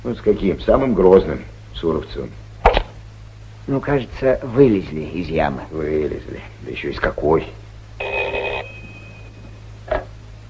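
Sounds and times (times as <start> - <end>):
speech: 0.0 - 2.4, 3.7 - 7.6
faint low hum: 0.0 - 10.4
short electronic telephone ring burst: 8.0 - 9.6.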